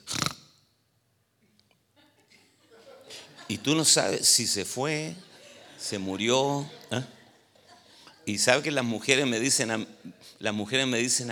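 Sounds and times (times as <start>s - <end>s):
voice imitating a snore with harsh snort and breathy rasping: 0.0s - 0.4s
laughter: 2.0s - 10.1s
speech: 3.5s - 5.3s, 5.9s - 7.2s, 8.3s - 11.2s.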